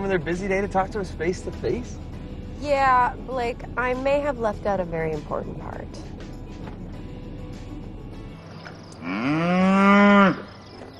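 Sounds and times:
speech: 0:00.1 - 0:06.1, 0:09.1 - 0:10.5
cow mooing on a farm: 0:09.0 - 0:10.6.

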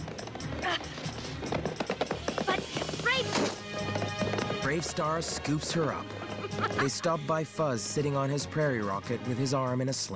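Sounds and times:
horse hooves clopping: 0:00.0 - 0:07.0
speech: 0:04.7 - 0:10.1
laughter: 0:06.0 - 0:07.5.

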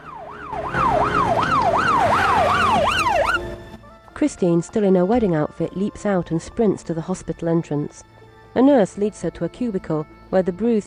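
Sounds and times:
police car siren yelping: 0:00.0 - 0:03.6
road traffic rumble: 0:00.0 - 0:03.8
speech: 0:04.2 - 0:10.8.

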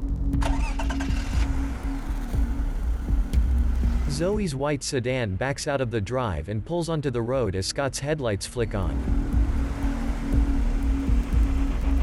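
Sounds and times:
truck engine cranking, catching and idling: 0:00.2 - 0:04.3, 0:08.8 - 0:12.0
speech: 0:04.2 - 0:09.2.

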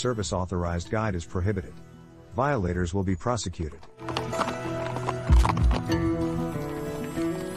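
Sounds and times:
speech: 0:00.0 - 0:04.5
mule hooves clip-clopping on a steep canyon trail: 0:03.9 - 0:07.5.

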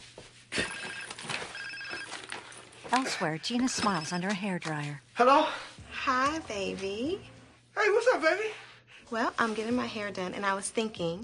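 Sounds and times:
mobile phone ringing with a warbling electronic tone: 0:00.6 - 0:02.5
speech: 0:02.9 - 0:11.2.

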